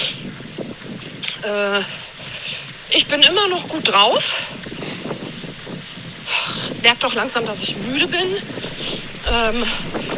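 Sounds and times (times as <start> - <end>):
speech: 1.4 - 2.0, 2.9 - 4.6, 6.8 - 10.1
strong wind gusting and buffeting outdoors: 4.5 - 10.1
person making a short voiced sound: 4.8 - 5.1.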